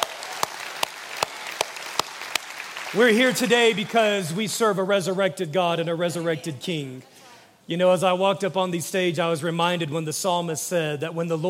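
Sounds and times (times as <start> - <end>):
dense wash of scattered applause: 0.0 - 4.3
church audience clapping together on a regular beat: 0.0 - 4.4
speech: 2.9 - 7.1, 7.7 - 11.4.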